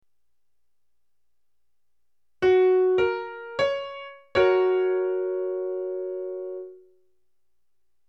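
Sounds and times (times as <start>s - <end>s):
triad chord: 2.4s - 6.9s.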